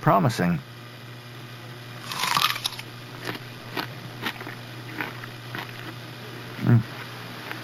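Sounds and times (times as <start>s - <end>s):
chewing clicks and crackles: 2.0s - 6.0s, 7.0s - 7.6s
teeth crunching into an apple: 2.0s - 7.6s.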